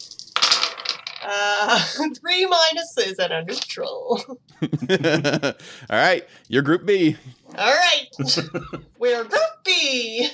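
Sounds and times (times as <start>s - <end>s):
dice rolled on a table: 0.2s - 1.3s
speech: 1.2s - 10.3s
laughter: 4.6s - 5.7s, 8.2s - 9.0s.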